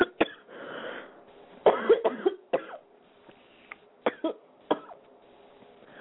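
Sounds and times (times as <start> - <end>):
person coughing after choking on something down the wrong way: 0.0 - 0.5, 1.7 - 2.8, 4.1 - 5.0
person gasping between coughs: 0.5 - 1.2.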